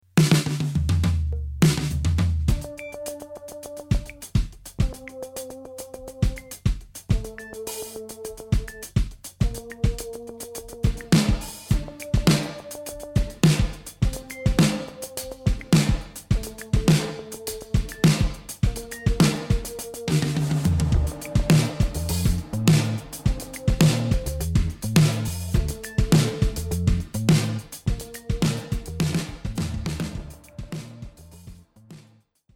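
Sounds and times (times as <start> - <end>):
wet drums through spring reverb machines set to Combo: 0.2 - 32.2.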